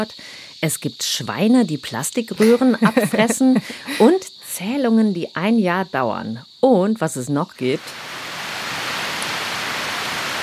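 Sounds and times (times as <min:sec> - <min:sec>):
speech: 0:00.0 - 0:08.1
laughter: 0:02.4 - 0:04.2
heavy rain in a rainforest: 0:07.8 - 0:10.4.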